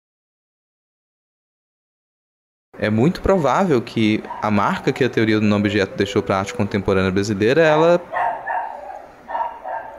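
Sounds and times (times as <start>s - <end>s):
speech: 2.8s - 8.2s
dog barking: 4.2s - 4.8s, 8.1s - 9.9s.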